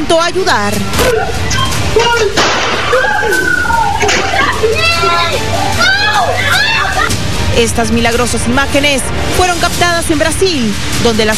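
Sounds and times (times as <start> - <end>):
busy street background in Brazil: 0.0 - 11.3
speech: 0.1 - 3.8, 7.6 - 11.3
people chattering excitedly: 1.2 - 7.3
handgun gunshot fired by a criminal struggling with his victim on a street: 2.4 - 2.8.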